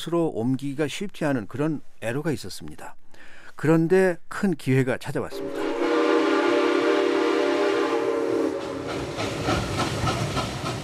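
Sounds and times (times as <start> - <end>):
speech: 0.0 - 3.0, 3.6 - 5.6, 9.5 - 9.8
steam train hissing loudly: 5.4 - 10.8
steam train chuffing and clanking as it gets moving: 8.5 - 10.8.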